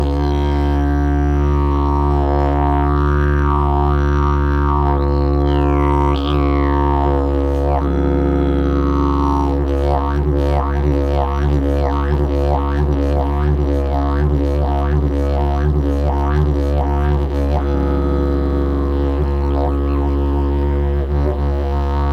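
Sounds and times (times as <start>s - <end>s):
stained and oiled 28 mm elm didgeridoo playing in C sharp to D: 0.0s - 22.1s.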